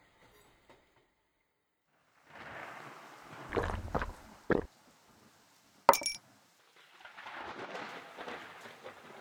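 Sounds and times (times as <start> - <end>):
steady rain: 2.2 - 9.1.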